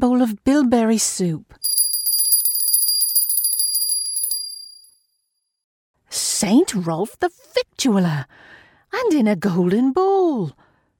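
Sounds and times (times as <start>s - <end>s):
speech: 0.0s - 1.6s, 6.1s - 10.6s
small silver bell jingling: 1.6s - 5.0s.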